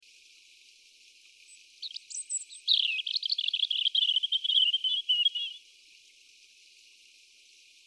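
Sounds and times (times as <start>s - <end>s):
European robin Erithacus rubecula singing: 1.5s - 5.6s.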